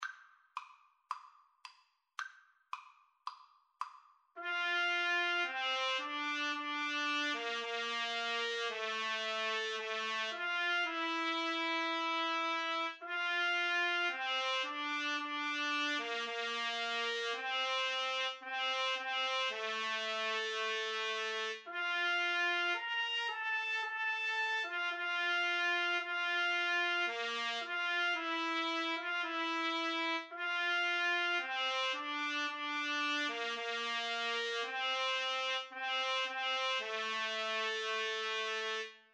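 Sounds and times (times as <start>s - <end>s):
two trumpets playing a hymn: 4.4s - 38.9s.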